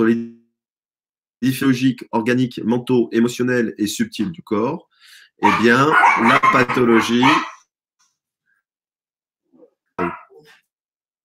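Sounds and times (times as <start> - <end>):
speech: 0.0 - 0.4, 1.4 - 7.5
dog barking: 5.4 - 7.6.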